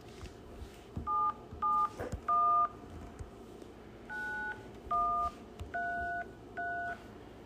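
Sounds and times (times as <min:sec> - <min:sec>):
phone keypad dialing tones: 0:01.1 - 0:02.8, 0:04.1 - 0:07.0.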